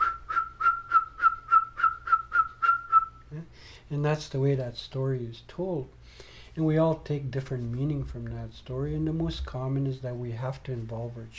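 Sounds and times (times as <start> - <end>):
eagle bone whistle blasts: 0.0 - 3.3
speech: 3.9 - 11.3
low rumble: 7.6 - 10.3.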